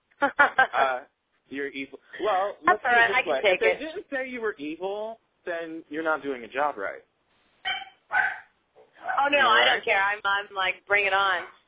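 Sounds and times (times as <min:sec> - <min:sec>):
laughter: 0:00.2 - 0:01.0
speech: 0:00.2 - 0:07.1, 0:09.2 - 0:11.6
dog barking: 0:07.7 - 0:08.6.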